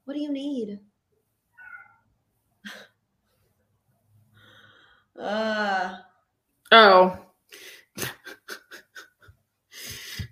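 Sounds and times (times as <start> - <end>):
speech: 0.1 - 0.9, 5.2 - 6.1, 6.7 - 7.2
cat meowing loudly: 1.6 - 2.0
laughter: 8.0 - 9.3.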